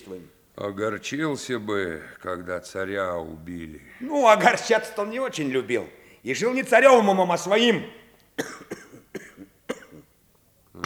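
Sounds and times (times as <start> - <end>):
speech: 0.1 - 8.8
man coughing in sharp harsh bursts: 8.4 - 10.2.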